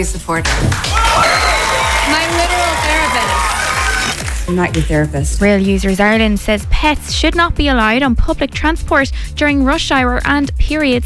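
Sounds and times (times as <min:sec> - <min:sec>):
speech: 0:00.0 - 0:01.2, 0:02.1 - 0:11.0
studio audience clapping: 0:00.5 - 0:05.0
studio audience cheering and whooping: 0:00.7 - 0:04.5.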